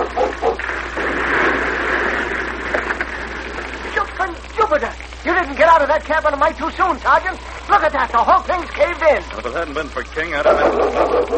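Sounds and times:
sled dogs barking: 0:00.0 - 0:00.9, 0:10.4 - 0:11.3
steady hiss of broadband noise: 0:00.0 - 0:11.3
speech: 0:05.4 - 0:11.3.

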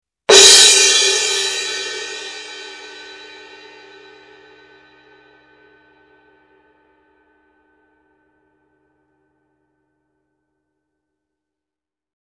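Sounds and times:
18-inch symphonic suspended cymbal: 0:00.3 - 0:06.0.

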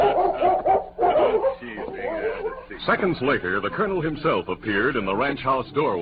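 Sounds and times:
large German shepherd barking a welcome at a ranch: 0:00.0 - 0:02.8
speech: 0:02.9 - 0:05.9.

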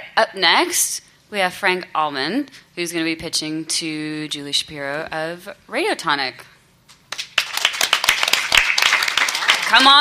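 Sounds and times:
speech: 0:00.2 - 0:06.5, 0:09.7 - 0:09.9
crowd clapping in a room: 0:07.1 - 0:09.9.

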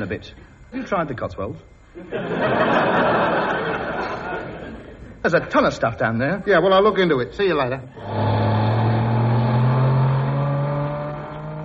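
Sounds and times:
speech: 0:00.0 - 0:04.0, 0:05.2 - 0:08.3
laughter: 0:02.0 - 0:05.5
car engine droning along a road: 0:07.9 - 0:11.6.

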